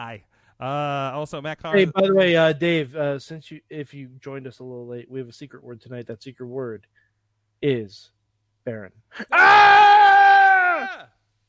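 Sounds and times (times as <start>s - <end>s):
speech: 0.0s - 7.0s, 7.6s - 10.2s, 10.8s - 11.2s
loud sustained high-pitched yell: 9.3s - 11.1s.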